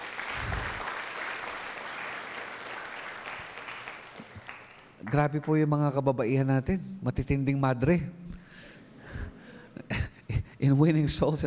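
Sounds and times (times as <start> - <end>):
audience applause at a church worship gathering: 0.0 - 5.2
speech: 5.0 - 8.2, 10.6 - 11.4.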